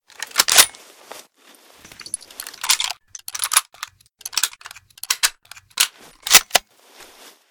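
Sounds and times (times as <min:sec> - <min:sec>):
1903A1 Unertl .308 sniper rifle reload: 0:00.1 - 0:00.8, 0:01.9 - 0:06.6.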